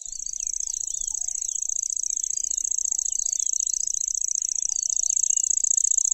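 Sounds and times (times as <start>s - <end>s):
Lanceolated warbler giving a high reel: 0.1s - 6.1s.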